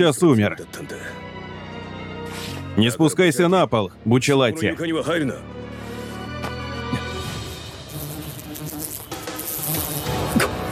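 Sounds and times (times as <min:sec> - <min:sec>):
speech: 0:00.0 - 0:01.2, 0:02.8 - 0:05.6
fly buzzing: 0:07.0 - 0:10.7.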